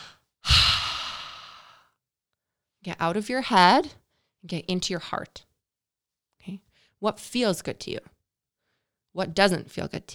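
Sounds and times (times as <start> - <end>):
deep breath in and out: 0.0 - 1.8
speech: 2.8 - 5.5, 6.4 - 8.1, 9.2 - 10.1.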